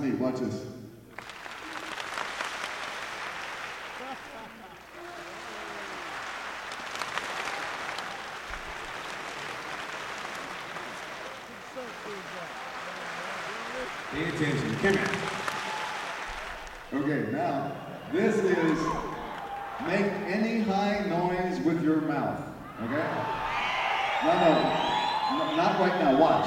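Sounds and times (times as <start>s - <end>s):
speech: 0.2s - 0.8s, 14.1s - 15.2s, 25.5s - 26.4s
audience clapping in a wave moving across the room: 1.1s - 17.1s, 17.7s - 21.5s, 22.9s - 26.4s
laughter: 1.5s - 21.5s.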